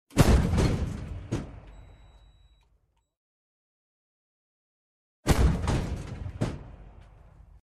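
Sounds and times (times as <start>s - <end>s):
tank cannon shot heard from inside the tank: 0.1s - 1.7s, 5.3s - 7.4s.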